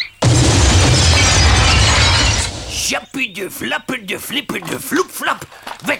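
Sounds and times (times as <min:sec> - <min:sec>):
paving stone smashing through a window, shattering glass and falling debris: 0:00.2 - 0:02.9
speech: 0:03.2 - 0:05.9.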